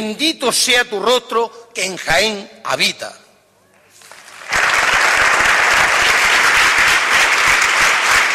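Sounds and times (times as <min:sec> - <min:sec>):
speech: 0:00.0 - 0:03.2
audience applause: 0:04.0 - 0:08.3.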